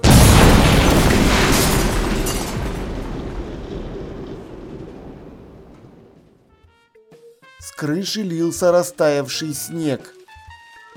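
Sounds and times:
explosion blast blowing out windows: 0.0s - 6.4s
speech: 7.8s - 10.2s.

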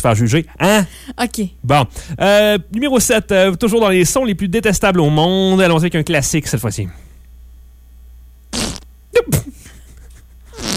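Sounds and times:
speech: 0.0s - 7.1s
whoopee cushion fart noises: 8.5s - 8.9s, 10.5s - 10.7s.

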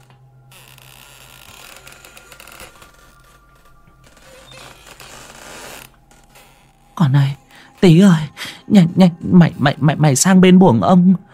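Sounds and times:
two wooden doors swinging back and forth and creaking: 0.0s - 8.0s
speech: 7.0s - 11.3s.

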